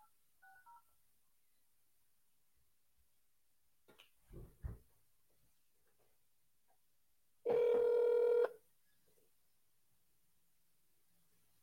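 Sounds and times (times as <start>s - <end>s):
steady mid-pitched telephone dialing tone: 7.5s - 8.6s.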